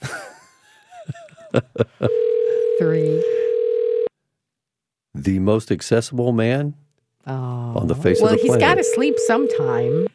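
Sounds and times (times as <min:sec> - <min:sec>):
speech: 0:01.5 - 0:02.2, 0:02.8 - 0:03.4, 0:05.2 - 0:10.1
faint phone line ringing while call waits to be answered: 0:02.1 - 0:04.1, 0:08.1 - 0:10.1.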